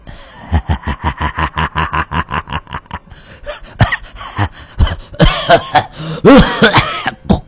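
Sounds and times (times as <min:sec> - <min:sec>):
laughter: 0:00.4 - 0:03.1
old man's prolonged coughing fit: 0:04.8 - 0:07.2
speech: 0:06.2 - 0:06.9.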